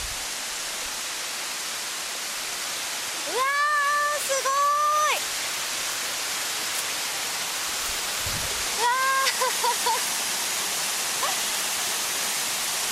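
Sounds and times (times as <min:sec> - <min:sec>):
waterfall rushing: 0:00.0 - 0:12.9
person's surprised exclamation: 0:03.3 - 0:05.2, 0:08.8 - 0:10.0.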